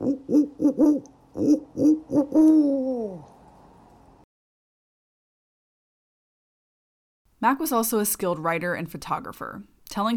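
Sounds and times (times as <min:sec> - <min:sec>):
owl hooting: 0:00.0 - 0:03.3
speech: 0:07.4 - 0:10.1.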